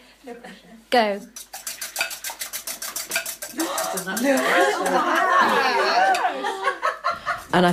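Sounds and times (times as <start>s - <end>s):
speech: 0.2s - 1.5s, 3.8s - 6.9s, 7.5s - 7.7s
balloon whisk whisking ingredients in a bowl: 1.2s - 6.3s
laughter: 3.5s - 7.6s.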